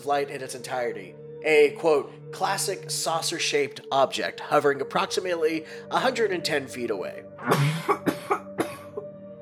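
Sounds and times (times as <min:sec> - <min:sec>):
speech: 0:00.0 - 0:08.0
dry coughs from people just out of COVID: 0:07.4 - 0:09.1.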